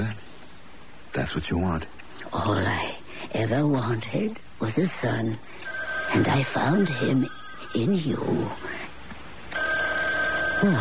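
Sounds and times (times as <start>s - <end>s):
speech: 1.2s - 8.8s, 10.6s - 10.8s
telephone ringing in another room: 5.6s - 8.5s, 9.5s - 10.8s.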